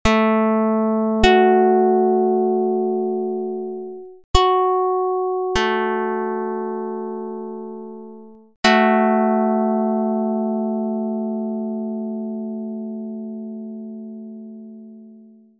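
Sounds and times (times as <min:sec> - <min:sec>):
pluck: 0:00.0 - 0:15.4.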